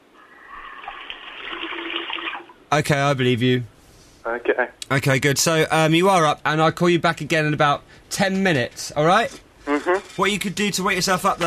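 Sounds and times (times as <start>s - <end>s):
water running: 0.2s - 2.7s
speech: 2.7s - 3.7s, 4.3s - 11.4s.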